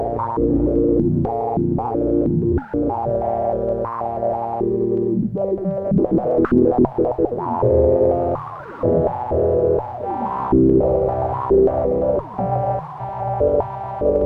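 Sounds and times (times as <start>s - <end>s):
noise in B-flat: 0.0s - 14.2s.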